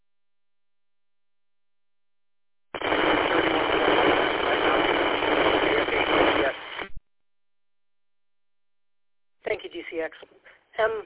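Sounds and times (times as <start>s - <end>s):
radio static bursts on a radio net: 2.8s - 7.0s
speech: 10.0s - 11.0s.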